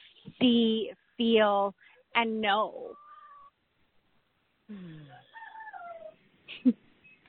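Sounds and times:
speech: 0.4 - 3.0, 4.7 - 5.1, 6.6 - 6.8
rooster crowing: 5.1 - 6.2.

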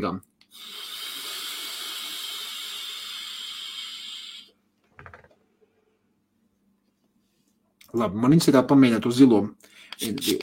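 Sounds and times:
speech: 0.0 - 0.8, 7.9 - 10.4
soft breathy exhale: 0.5 - 4.5
warm vapor inhaled from an e-cigarette coil: 0.5 - 4.6.

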